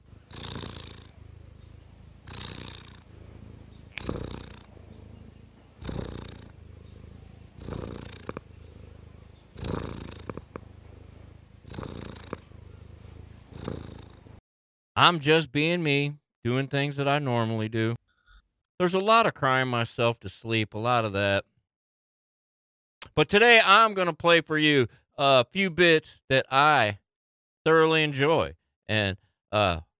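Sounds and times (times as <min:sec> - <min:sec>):
cat purring: 0:00.0 - 0:14.4
speech: 0:15.0 - 0:18.0, 0:18.8 - 0:21.5, 0:23.2 - 0:27.0, 0:27.6 - 0:29.9.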